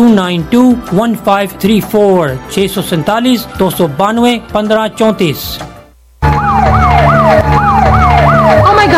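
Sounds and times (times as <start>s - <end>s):
speech: 0.1s - 5.7s
police car siren wailing: 6.2s - 8.9s.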